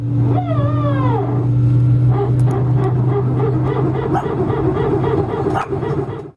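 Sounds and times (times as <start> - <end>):
loud airplane engine drone with falling whine: 0.0 - 6.3
dog barking at a plane: 2.1 - 6.2.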